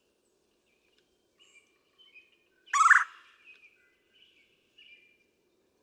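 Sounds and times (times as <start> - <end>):
red-bellied woodpecker rough trilled churr: 2.7 - 3.2.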